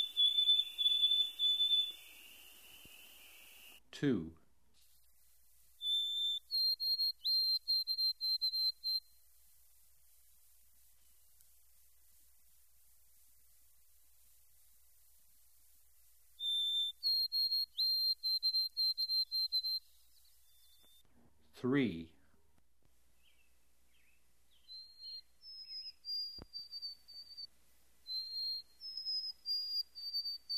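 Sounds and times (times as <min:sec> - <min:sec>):
White-throated sparrow song: 0:00.0 - 0:03.8, 0:05.7 - 0:09.2, 0:16.4 - 0:21.0, 0:23.2 - 0:30.5
speech: 0:04.0 - 0:04.4, 0:21.6 - 0:22.2.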